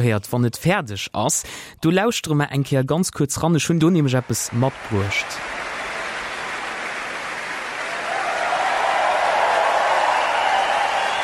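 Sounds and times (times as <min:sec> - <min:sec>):
speech: 0:00.0 - 0:05.6
large concert hall audience applauding: 0:03.8 - 0:11.2.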